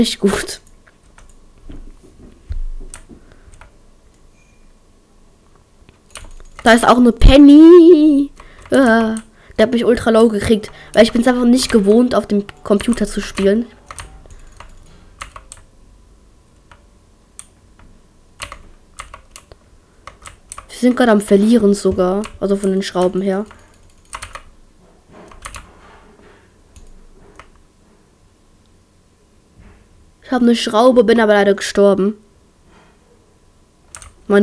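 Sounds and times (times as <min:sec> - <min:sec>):
speech: 0:00.0 - 0:00.6, 0:06.6 - 0:13.8, 0:20.8 - 0:23.6, 0:30.3 - 0:32.2
low hum: 0:00.0 - 0:34.4
mechanical keyboard with green switches clicking during computer gaming: 0:06.0 - 0:06.8, 0:10.6 - 0:15.7, 0:17.4 - 0:20.8, 0:21.8 - 0:24.5, 0:25.3 - 0:25.7, 0:33.9 - 0:34.2.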